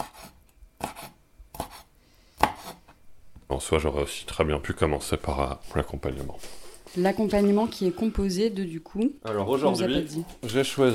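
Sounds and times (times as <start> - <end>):
knife chopping large Ecuadorian shrimp into small pieces: 0.0 - 2.8
speech: 3.5 - 10.9.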